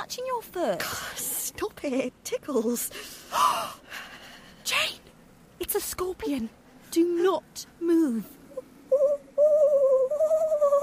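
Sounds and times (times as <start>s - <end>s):
speech: 0.0s - 4.0s, 5.6s - 9.0s
person imitating an owl hoot: 8.9s - 10.8s.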